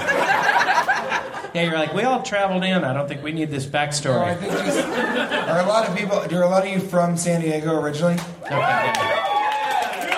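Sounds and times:
laughter: 0:00.0 - 0:06.7
speech: 0:01.5 - 0:09.2
live audience calling and yelling out: 0:08.4 - 0:10.1.

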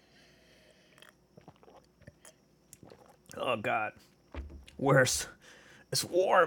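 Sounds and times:
faint steady hum: 0:00.0 - 0:06.4
person sipping cold coffee: 0:00.6 - 0:03.4
wet swallowing clicks: 0:01.0 - 0:03.4
speech: 0:03.5 - 0:04.2, 0:04.8 - 0:06.4.

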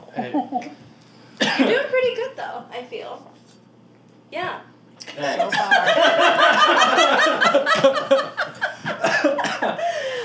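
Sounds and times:
speech: 0:00.2 - 0:00.9, 0:01.5 - 0:03.4, 0:04.3 - 0:08.6
harsh coughing after smoking homegrown marijuana: 0:01.4 - 0:01.8, 0:07.8 - 0:09.8
people laughing: 0:05.2 - 0:10.0.

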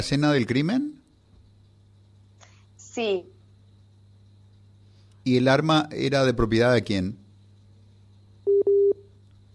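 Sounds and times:
speech: 0:00.0 - 0:01.0, 0:03.0 - 0:03.4, 0:05.2 - 0:07.2
low constant hum: 0:00.0 - 0:09.5
electronic telephone tone beeps on an international phone call: 0:08.5 - 0:09.0.

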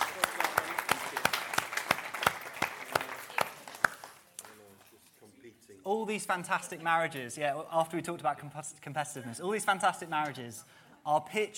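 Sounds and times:
audience applauding a couple celebrating their golden wedding anniversary: 0:00.0 - 0:04.6
speech: 0:05.9 - 0:11.5.

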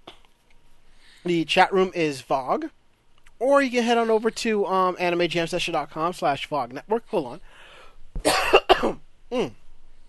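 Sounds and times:
speech: 0:01.2 - 0:02.8, 0:03.4 - 0:07.6, 0:08.2 - 0:09.6
person coughing after something went down the wrong way: 0:08.2 - 0:09.5.

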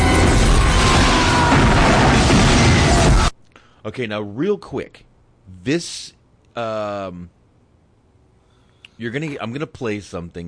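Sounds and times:
bomb explosion from a played film clip: 0:00.0 - 0:03.3
speech: 0:03.9 - 0:07.4, 0:09.0 - 0:10.4.

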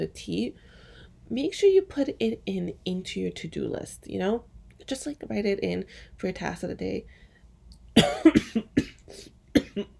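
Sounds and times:
speech: 0:00.0 - 0:07.2, 0:08.0 - 0:09.9
person coughing: 0:08.0 - 0:09.9.

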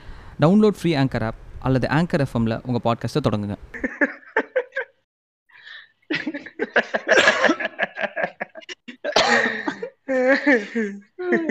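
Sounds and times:
speech: 0:00.4 - 0:04.1, 0:10.5 - 0:11.5
laughter: 0:03.8 - 0:05.0, 0:06.1 - 0:11.5
person coughing: 0:06.3 - 0:07.8, 0:08.6 - 0:11.5.

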